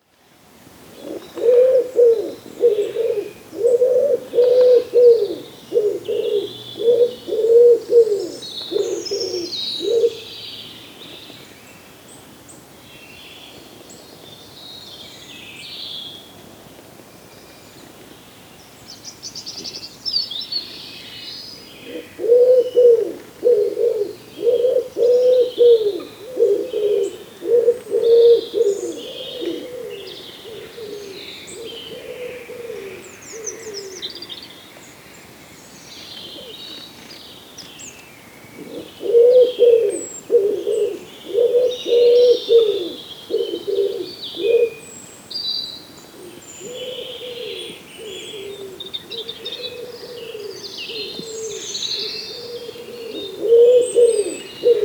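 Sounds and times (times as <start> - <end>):
woodpigeon cooing: 1.0 - 10.3, 21.8 - 34.0, 38.6 - 44.8, 46.2 - 54.8
birdsong: 1.0 - 16.3, 17.2 - 54.8.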